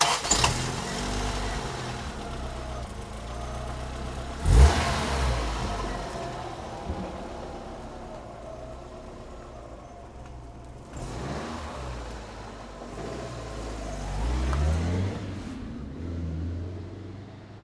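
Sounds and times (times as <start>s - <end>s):
car starting and driving off: 0.0s - 17.6s
street traffic: 0.0s - 17.6s.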